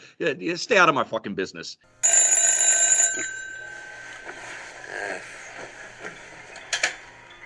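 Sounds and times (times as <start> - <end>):
speech: 0.2 - 2.0
telephone ringing with an electronic trill: 2.0 - 7.4
faint murmurs: 4.1 - 6.8.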